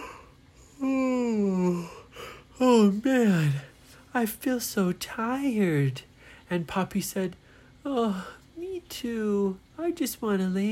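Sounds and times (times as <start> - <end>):
person yawning: 0.0 - 2.4
speech: 2.7 - 3.6, 4.2 - 10.7.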